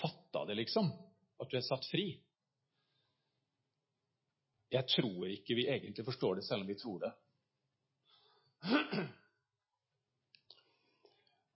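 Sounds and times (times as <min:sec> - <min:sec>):
speech: 0:00.5 - 0:02.3, 0:04.7 - 0:07.2, 0:08.6 - 0:09.2
soft breathy sounds: 0:02.6 - 0:03.5, 0:08.0 - 0:08.6, 0:10.5 - 0:11.5
husky throat-clearing cough: 0:08.6 - 0:09.4.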